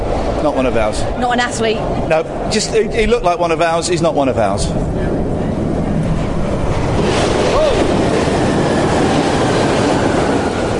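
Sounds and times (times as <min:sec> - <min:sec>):
train rattling along rails with clatter of wheels: 0:00.0 - 0:10.7
speech: 0:00.4 - 0:05.2.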